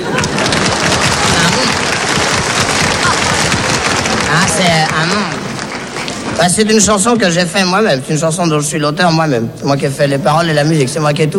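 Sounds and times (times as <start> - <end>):
crowd applauding: 0.0 - 7.1
speech: 4.3 - 5.4, 6.4 - 11.3.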